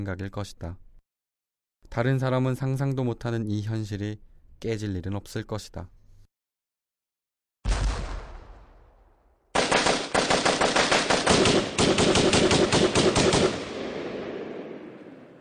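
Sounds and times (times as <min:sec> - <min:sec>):
speech: 0:00.0 - 0:00.9, 0:01.8 - 0:06.0
single loud gunshot: 0:07.6 - 0:15.3
sustained burst of rapid automatic gunfire: 0:09.5 - 0:15.3.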